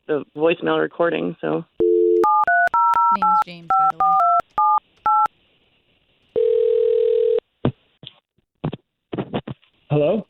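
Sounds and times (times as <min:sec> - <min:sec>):
speech: 0:00.1 - 0:01.8, 0:03.1 - 0:04.2, 0:10.0 - 0:10.2
telephone dial tone while placing a call: 0:01.8 - 0:05.3, 0:06.4 - 0:07.4
telephone keypad beeps: 0:01.8 - 0:05.3.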